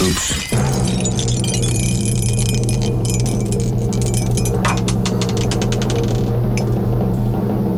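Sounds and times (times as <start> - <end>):
low steady hum: 0.8 - 7.7
dice rattling in a dice cup in a cellar: 1.1 - 6.3.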